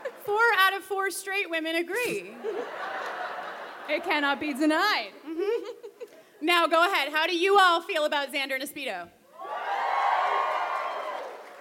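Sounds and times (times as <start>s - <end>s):
laughter: 0.0s - 0.3s, 2.0s - 6.3s
speech: 0.3s - 3.1s, 3.9s - 5.7s, 6.4s - 9.2s
live audience cheering and booing: 9.4s - 11.5s.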